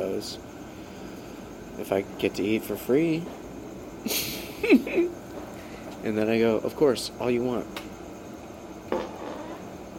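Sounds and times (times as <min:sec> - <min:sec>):
speech: 0:00.2 - 0:00.5, 0:01.8 - 0:03.4, 0:04.0 - 0:05.2, 0:06.0 - 0:07.9
short fart: 0:08.9 - 0:09.5.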